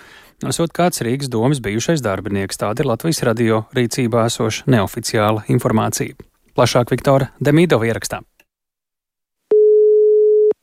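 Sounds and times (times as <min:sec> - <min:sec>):
speech: 0:00.4 - 0:08.3
telephone ringback tone of an unanswered call: 0:09.5 - 0:10.6.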